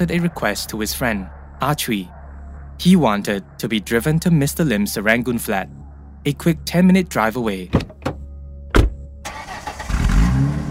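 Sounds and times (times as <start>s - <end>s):
speech: 0.0s - 2.2s, 2.8s - 7.9s
car engine cranking and starting into a rumbling idle: 7.8s - 10.6s.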